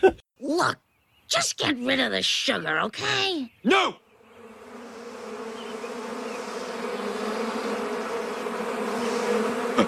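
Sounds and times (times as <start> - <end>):
speech: 0.0 - 4.0
swarm of bees buzzing: 4.0 - 9.8.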